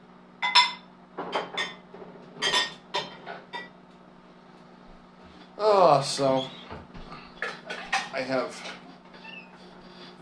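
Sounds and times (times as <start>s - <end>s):
old church plates and bowls clinking as they are handled: 0.4s - 1.8s, 2.4s - 3.7s, 7.4s - 8.8s
speech: 5.6s - 6.6s, 8.2s - 8.8s.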